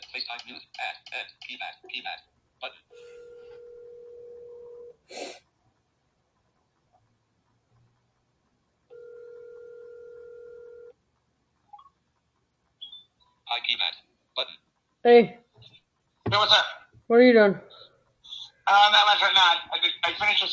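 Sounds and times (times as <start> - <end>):
speech: 0.3 - 3.3, 5.1 - 5.5, 14.4 - 15.4, 16.3 - 17.8, 18.7 - 20.5
outgoing phone call ringback tone: 2.9 - 4.9, 8.9 - 10.9.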